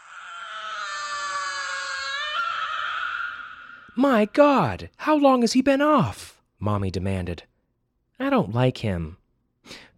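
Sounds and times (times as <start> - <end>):
robot baby screeching: 0.0 - 4.0
speech: 4.0 - 7.5, 8.2 - 9.9.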